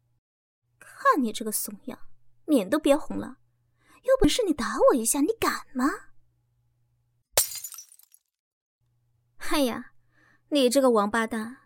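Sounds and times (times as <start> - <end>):
speech: 1.1 - 3.4, 4.0 - 6.1, 9.5 - 9.9, 10.5 - 11.6
object smashed hard onto the floor and breaking: 7.4 - 8.3.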